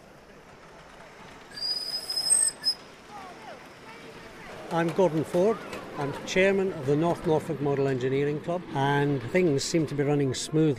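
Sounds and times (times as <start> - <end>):
low rumble of rail vehicle at railway station: 0.0 - 10.7
rail vehicle wheels squealing arriving at railway station: 1.5 - 2.8
speech: 4.7 - 10.7.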